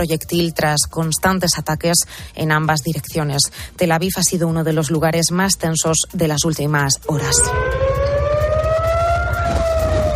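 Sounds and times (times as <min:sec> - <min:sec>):
speech: 0:00.0 - 0:08.1
air raid sirens wailing across south Tel Aviv Israel: 0:07.0 - 0:10.1.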